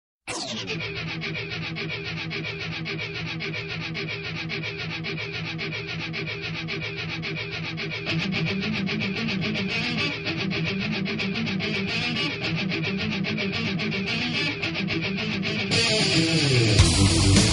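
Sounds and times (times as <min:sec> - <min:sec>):
heavy guitar: 0:00.3 - 0:17.5.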